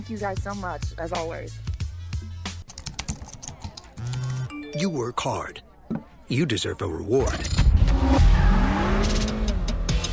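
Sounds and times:
speech: 0:00.0 - 0:01.7, 0:04.0 - 0:08.3
Acura TLX Type S turbocharged 3.0-liter V6 sports car engine revving: 0:07.6 - 0:10.1.

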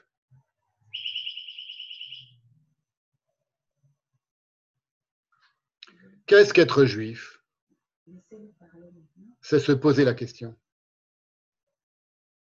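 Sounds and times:
clock sounding the hour with recorded birdsong: 0:01.0 - 0:02.3
speech: 0:06.3 - 0:07.4, 0:09.4 - 0:10.6.

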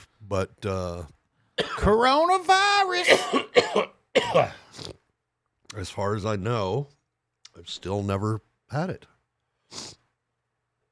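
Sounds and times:
speech: 0:00.2 - 0:04.9, 0:05.8 - 0:07.0, 0:07.6 - 0:09.1, 0:09.7 - 0:10.0
person with a cough coughing: 0:01.6 - 0:01.9, 0:03.0 - 0:04.8
breathy rasp like throat clearing: 0:03.1 - 0:05.0.

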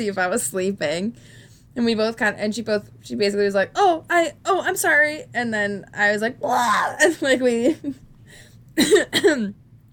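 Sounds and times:
speech: 0:00.0 - 0:09.6
choking cough: 0:08.8 - 0:09.5.

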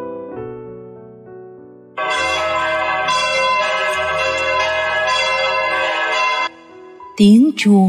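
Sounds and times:
loud bells clanging rapidly: 0:02.0 - 0:07.2
person speaking: 0:07.2 - 0:07.8.

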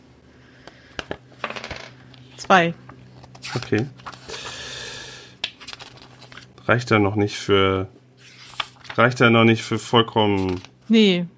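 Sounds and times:
six-sided die rolled during a tabletop role-playing game: 0:01.4 - 0:02.0
speech: 0:02.4 - 0:02.8, 0:03.6 - 0:04.0, 0:06.7 - 0:08.0, 0:09.0 - 0:11.3.

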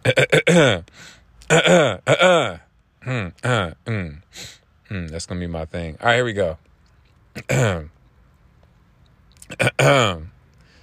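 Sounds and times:
person clearing throat: 0:00.0 - 0:00.8, 0:01.4 - 0:04.2, 0:07.4 - 0:07.9, 0:09.4 - 0:10.3
speech: 0:05.3 - 0:06.7, 0:07.5 - 0:07.9, 0:09.6 - 0:10.2.

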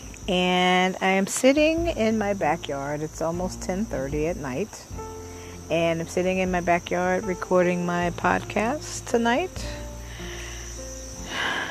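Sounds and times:
crickets chirping at night: 0:00.0 - 0:11.6
speech: 0:00.3 - 0:05.1, 0:05.7 - 0:09.8.

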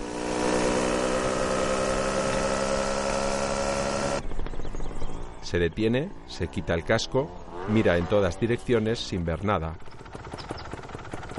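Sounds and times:
dirt bike engine droning while ridden fast through a large olive grove: 0:00.0 - 0:11.3
speech: 0:05.5 - 0:10.0.

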